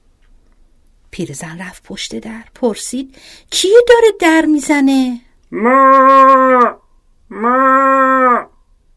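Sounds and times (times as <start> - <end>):
speech: 1.2 - 7.7
human voice imitating a cow mooing: 5.5 - 8.5.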